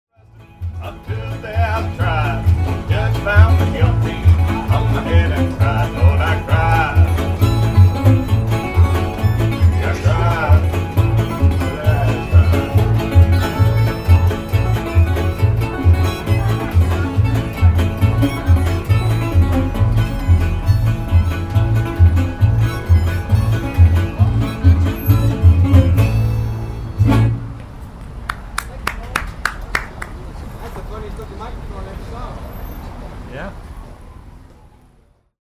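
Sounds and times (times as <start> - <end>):
street musicians playing: 0.1 - 31.8.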